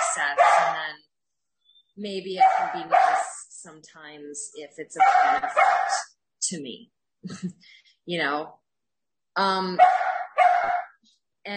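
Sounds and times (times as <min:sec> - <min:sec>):
dog barking eagerly to play: 0:00.0 - 0:00.9, 0:02.4 - 0:03.4, 0:05.0 - 0:06.1, 0:09.8 - 0:11.0
speech: 0:02.0 - 0:08.6, 0:09.4 - 0:10.0
dog giving a whiny yelp: 0:02.4 - 0:03.3, 0:05.0 - 0:06.0, 0:09.8 - 0:11.0.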